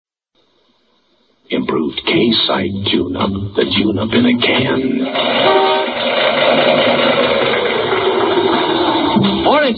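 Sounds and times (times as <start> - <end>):
speech: 1.4 - 7.1, 9.5 - 9.7
misfiring car engine idling: 5.0 - 9.4.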